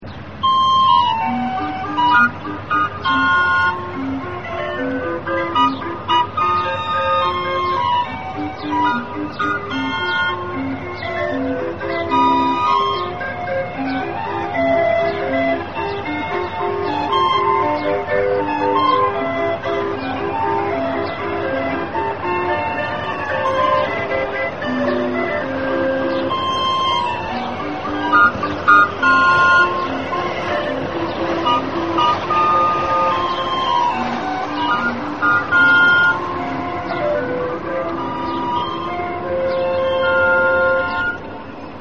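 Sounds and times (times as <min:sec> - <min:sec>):
calliope music: 0:00.1 - 0:41.8.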